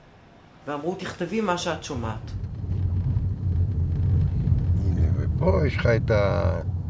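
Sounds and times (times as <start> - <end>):
low engine rumble from inside a moving car: 1.4 - 6.8.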